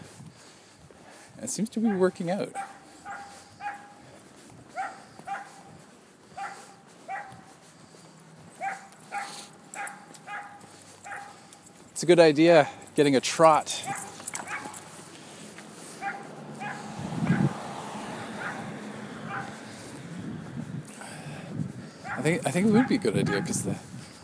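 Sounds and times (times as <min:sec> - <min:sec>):
steady outdoor noise: 0:00.0 - 0:24.2
speech: 0:01.4 - 0:02.8, 0:12.0 - 0:14.1, 0:22.2 - 0:23.9
dog barking in a yard: 0:01.8 - 0:11.5, 0:13.8 - 0:15.0, 0:16.0 - 0:17.6, 0:18.2 - 0:19.7, 0:22.0 - 0:23.6.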